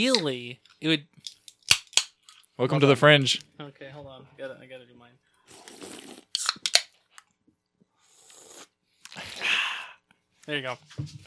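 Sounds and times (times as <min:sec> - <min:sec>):
speech: 0:00.0 - 0:01.4, 0:02.6 - 0:06.3, 0:10.4 - 0:11.2
slurping of a drink: 0:05.5 - 0:06.8, 0:08.0 - 0:09.5
sharp wet mouth smacks: 0:05.6 - 0:06.9.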